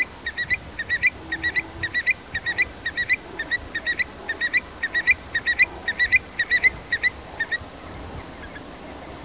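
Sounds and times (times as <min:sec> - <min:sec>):
Eurasian stone-curlew whistled calls: 0:00.0 - 0:07.6.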